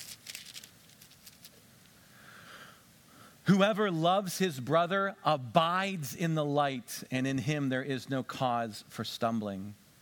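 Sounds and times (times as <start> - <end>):
thin bible pages being turned: 0.0 - 1.6
speech: 3.5 - 9.8.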